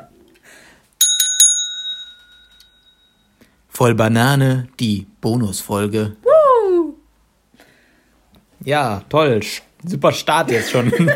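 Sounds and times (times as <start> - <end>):
bicycle bell ringing: 1.0 - 3.4
speech: 3.8 - 6.2, 8.7 - 11.1
laughter: 10.4 - 11.1.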